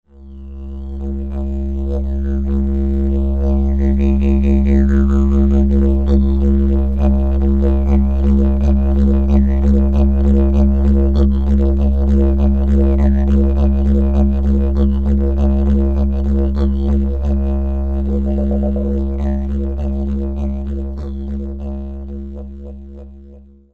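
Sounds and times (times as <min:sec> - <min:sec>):
painted bamboo didgeridoo: 0:00.1 - 0:23.7.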